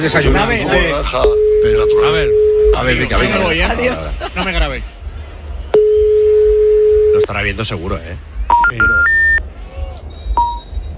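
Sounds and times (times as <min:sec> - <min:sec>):
speech: 0:00.0 - 0:05.0, 0:07.3 - 0:09.1
low rumble: 0:00.0 - 0:10.9
electronic phone call tones beeping: 0:01.2 - 0:02.9, 0:05.8 - 0:07.2, 0:08.5 - 0:09.4.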